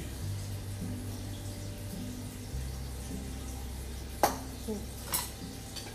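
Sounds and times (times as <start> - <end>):
food sizzling in a pan: 0.0 - 5.9
sharp pops of something bursting in a pan: 4.2 - 5.9.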